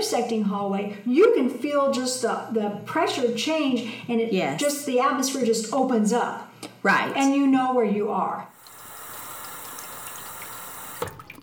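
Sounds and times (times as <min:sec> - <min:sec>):
speech: 0:00.0 - 0:08.5
drinking fountain in a hallway running water: 0:08.6 - 0:11.4.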